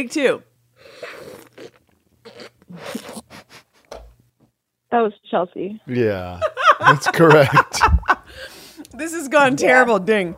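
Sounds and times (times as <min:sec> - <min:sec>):
speech: 0:00.0 - 0:01.7, 0:04.9 - 0:10.3
person slurping coffee: 0:00.8 - 0:03.4
laughter: 0:06.0 - 0:08.5.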